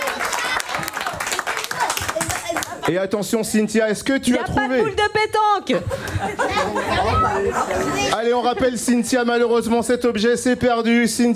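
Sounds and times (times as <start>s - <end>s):
crowd of many hands clapping: 0.0s - 3.0s
speech: 2.9s - 11.3s
laughter: 4.3s - 9.2s.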